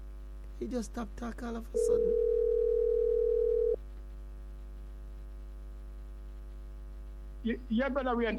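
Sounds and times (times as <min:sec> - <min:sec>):
faint low hum: 0:00.0 - 0:08.3
speech: 0:00.6 - 0:02.3, 0:07.4 - 0:08.3
telephone dial tone while calling someone back: 0:01.8 - 0:03.8.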